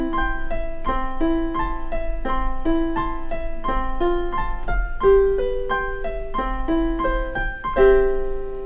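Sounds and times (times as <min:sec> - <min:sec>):
piano duet with beginner melody and lower accompaniment: 0:00.0 - 0:08.6.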